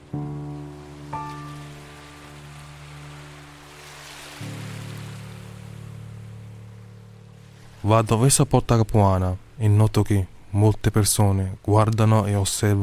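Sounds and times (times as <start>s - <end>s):
low constant humming drone: 0.0s - 8.2s
sea waves: 0.0s - 12.8s
speech: 7.8s - 12.8s.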